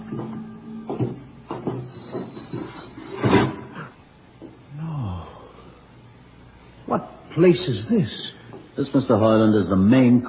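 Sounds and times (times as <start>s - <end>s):
heavy door grinding open with rhythmic mechanical clunks: 0.0s - 4.0s
speech: 7.4s - 10.2s.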